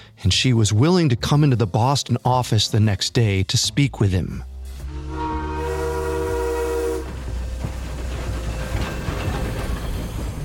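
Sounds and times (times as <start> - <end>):
speech: 0.2 - 4.5
train rolling along the rails: 4.6 - 10.4
train horn blaring: 4.7 - 7.5.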